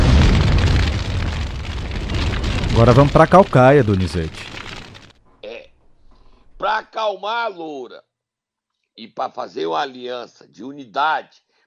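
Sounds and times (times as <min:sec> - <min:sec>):
heavy rumbling low-end roar: 0:00.0 - 0:05.0
bomb blast sound effect: 0:00.0 - 0:05.1
speech: 0:02.8 - 0:04.5, 0:06.7 - 0:08.1, 0:09.0 - 0:11.4.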